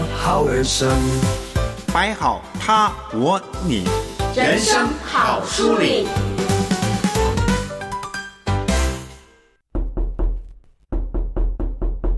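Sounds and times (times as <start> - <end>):
musical passage: 0.0 - 12.1
speech: 0.2 - 6.6
knocking on a door: 11.0 - 12.1.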